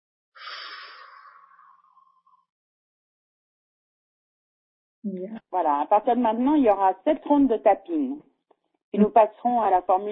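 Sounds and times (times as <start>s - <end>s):
slow deep breath: 0.4s - 2.4s
speech: 5.0s - 8.3s, 8.9s - 10.1s.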